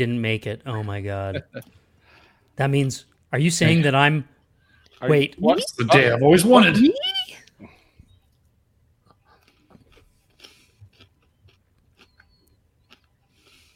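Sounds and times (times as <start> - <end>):
speech: 0.0 - 1.8, 2.6 - 4.4, 5.0 - 7.7
crunchy chewing of popcorn: 8.1 - 13.7.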